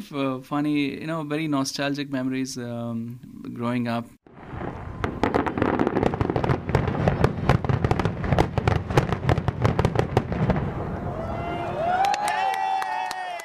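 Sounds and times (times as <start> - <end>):
speech: 0.0 - 4.2
Diwali fireworks exploding with popping and crackling: 4.3 - 10.9
shrill whistling rockets rising: 4.3 - 12.3.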